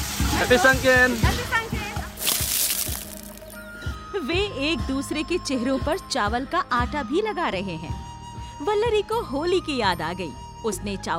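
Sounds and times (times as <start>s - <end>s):
water sloshing and splashing: 0.0s - 3.5s
speech: 0.4s - 1.5s, 4.2s - 11.1s.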